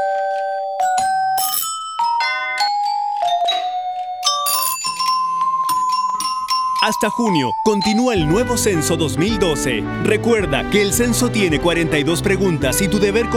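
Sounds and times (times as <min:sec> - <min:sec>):
doorbell chimes: 0:00.0 - 0:08.3
speech: 0:06.8 - 0:13.3.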